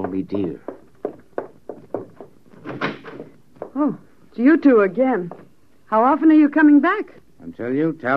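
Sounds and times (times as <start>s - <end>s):
speech: 0.1s - 0.7s, 3.8s - 8.1s
door rattling swing: 1.9s - 3.4s.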